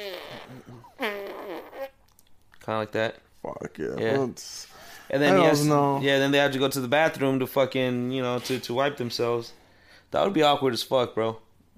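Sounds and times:
voice imitating a wet sputtering fart: 0.0s - 2.2s
speech: 2.7s - 11.5s.

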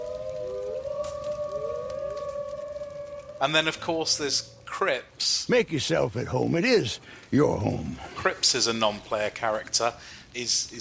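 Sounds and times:
wolves howling: 0.0s - 5.2s
speech: 3.4s - 10.8s.

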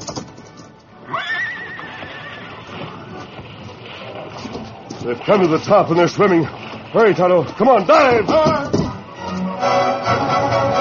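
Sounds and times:
busy noisy background: 0.0s - 10.7s
horse hooves clattering and pounding: 0.0s - 10.7s
horse whinnying: 1.0s - 4.8s
speech: 5.0s - 8.8s.

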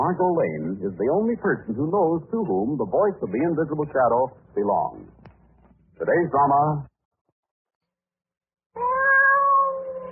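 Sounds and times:
speech: 0.0s - 5.2s, 6.0s - 6.9s
cat yowling: 8.8s - 10.1s.

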